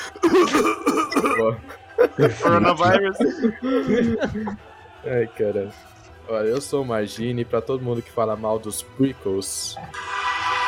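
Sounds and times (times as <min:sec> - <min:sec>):
person coughing: 0:00.0 - 0:01.6, 0:03.1 - 0:04.5
person chuckling: 0:00.2 - 0:04.6
speech: 0:00.5 - 0:10.2.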